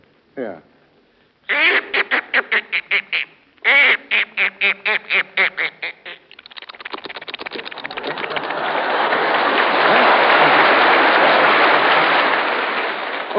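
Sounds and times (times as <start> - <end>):
speech: 0.4 - 0.7
voice imitating duck quacks: 1.5 - 8.4
laughter: 6.8 - 13.2.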